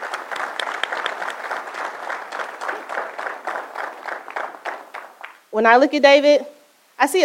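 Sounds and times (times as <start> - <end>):
crowd applauding an introduction: 0.0 - 5.5
speech: 5.6 - 7.2.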